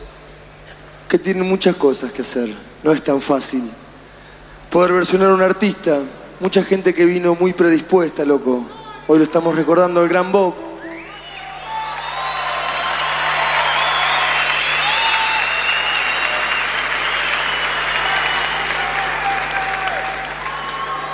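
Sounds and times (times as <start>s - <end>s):
speech: 1.1s - 3.8s, 4.7s - 10.7s
faint audience cheers and whistles: 10.8s - 21.1s
audience applauding: 10.9s - 21.1s.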